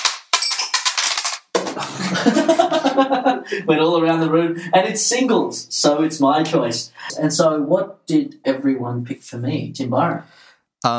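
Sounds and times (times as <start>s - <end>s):
dice clattering across a hard tabletop: 0.0s - 1.8s
laughter: 1.8s - 4.5s
speech: 1.8s - 10.9s.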